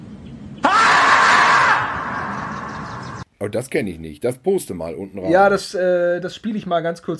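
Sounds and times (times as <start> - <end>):
marmot screaming played from a video clip: 0.6 - 3.2
speech: 3.4 - 7.1.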